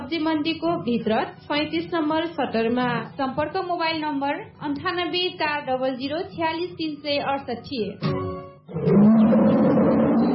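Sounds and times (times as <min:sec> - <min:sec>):
speech: 0:00.1 - 0:09.1
tiger roar: 0:08.7 - 0:10.3.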